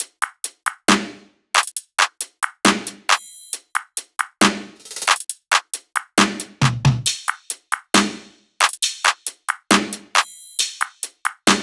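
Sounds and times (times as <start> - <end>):
music loop: 1.6 - 8.0, 8.6 - 11.6.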